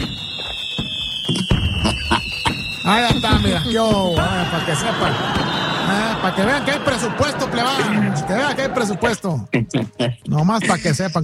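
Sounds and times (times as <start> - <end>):
fireworks whistle at a village-style fiesta: 0.0 - 7.0
laughter: 1.8 - 2.6, 4.3 - 11.2
speech: 2.9 - 11.2.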